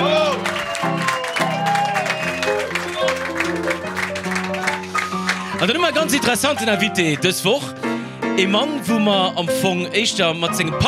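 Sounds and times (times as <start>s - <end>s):
audience applause: 0.0s - 6.2s
speech: 5.6s - 7.8s, 8.4s - 10.8s.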